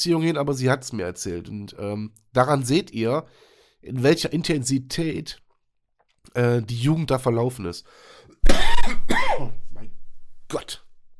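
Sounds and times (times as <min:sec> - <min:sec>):
speech: 0:00.0 - 0:05.4, 0:06.3 - 0:09.6, 0:10.5 - 0:10.8
harsh coughs: 0:08.4 - 0:09.6
rough throat clearing rasp: 0:08.4 - 0:09.6.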